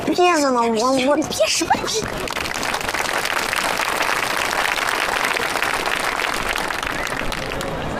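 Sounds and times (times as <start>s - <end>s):
speech: 0.1s - 2.5s
audience applause: 2.0s - 7.9s.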